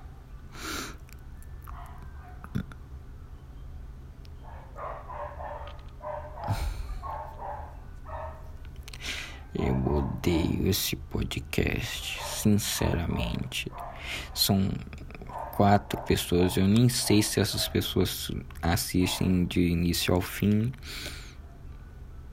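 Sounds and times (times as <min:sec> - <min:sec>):
several neighborhood dogs barking: 0:01.6 - 0:02.6, 0:04.3 - 0:08.6, 0:09.3 - 0:10.7, 0:11.7 - 0:19.6
speech: 0:10.7 - 0:15.0, 0:15.6 - 0:21.2.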